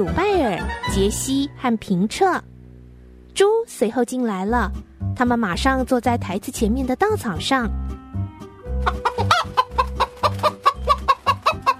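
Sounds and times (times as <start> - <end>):
speech: 0.0 - 2.5, 3.4 - 7.9
chickens clucking as they fly onto a windowsill: 8.7 - 11.7.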